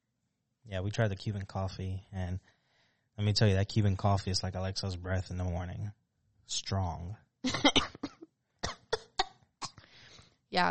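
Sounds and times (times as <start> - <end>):
speech: 0.7 - 2.5, 3.2 - 7.8
harsh coughs: 7.5 - 9.8.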